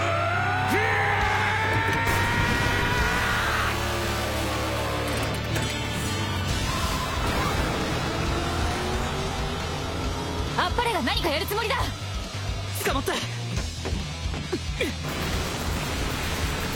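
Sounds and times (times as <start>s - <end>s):
dense mechanical rumble and grinding noise: 0.8s - 16.7s
car engine revving while braking a train: 2.7s - 13.9s
speech: 11.2s - 12.0s.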